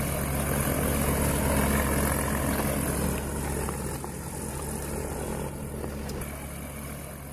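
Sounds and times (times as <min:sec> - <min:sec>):
small propeller airplane engine droning while taxiing and taking off: 0:00.0 - 0:07.3.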